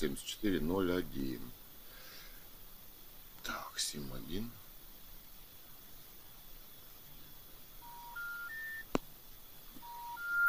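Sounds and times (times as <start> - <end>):
speech: 0.0 - 1.6, 3.4 - 4.6
rising run of steady telephone beeps: 7.8 - 8.9, 9.8 - 10.4
telephone call tones on a rejected call: 7.8 - 8.9, 9.8 - 10.4.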